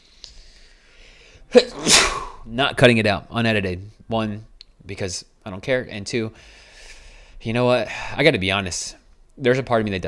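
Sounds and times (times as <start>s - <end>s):
person sneezing: 1.5s - 2.5s
speech: 1.5s - 6.6s, 7.4s - 10.0s.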